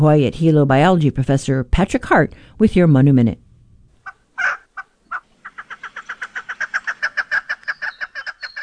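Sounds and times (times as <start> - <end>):
speech: 0.0 - 3.4
chukar calling with clucking and raspy chuk notes: 4.0 - 8.6.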